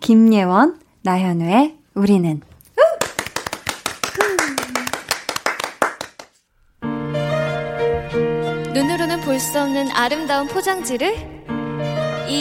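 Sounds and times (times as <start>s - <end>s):
speech: 0.1s - 2.5s, 9.4s - 12.3s
vocal whoops: 2.8s - 3.1s, 4.1s - 5.0s
lively audience applause: 3.0s - 6.4s
sustained sung or instrumental music: 6.8s - 12.3s.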